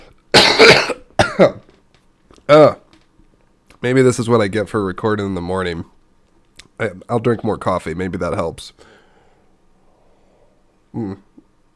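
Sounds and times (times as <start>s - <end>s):
person coughing harshly: 0.3s - 1.7s
voiced throat-clearing grunt: 0.4s - 1.7s
speech: 1.4s - 1.6s, 2.5s - 2.8s, 3.8s - 6.0s, 6.8s - 9.0s, 10.9s - 11.3s.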